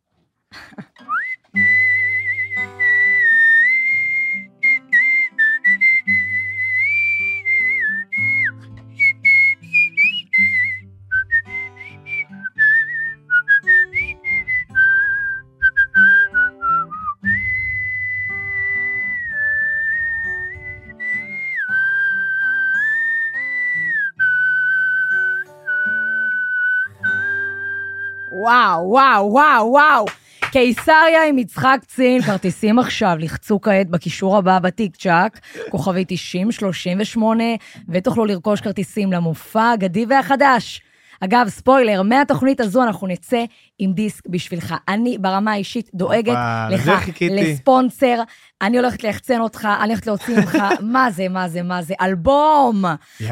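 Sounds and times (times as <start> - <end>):
person whistling a long wavering melody: 1.0 - 28.5
speech: 28.5 - 53.3
laughter: 32.1 - 32.6, 35.6 - 35.8, 46.3 - 47.6, 50.1 - 51.0.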